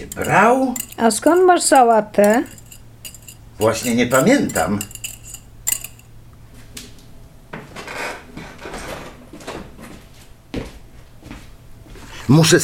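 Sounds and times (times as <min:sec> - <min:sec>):
speech: 0:00.0 - 0:02.6, 0:03.6 - 0:05.0, 0:12.3 - 0:12.6
eggs being beaten for an omelette in a bowl: 0:00.0 - 0:06.1.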